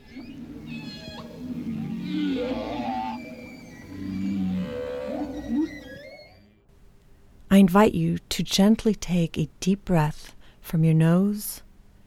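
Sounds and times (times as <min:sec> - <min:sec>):
whales singing in long wavering moans and sliding calls: 0:00.0 - 0:06.6
speech: 0:07.6 - 0:11.6.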